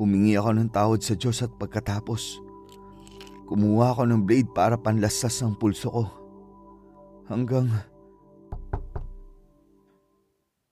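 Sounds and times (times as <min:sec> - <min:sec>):
speech: 0:00.1 - 0:02.5, 0:03.5 - 0:06.2, 0:07.3 - 0:07.9
firm knocks on a wooden door: 0:08.5 - 0:09.4.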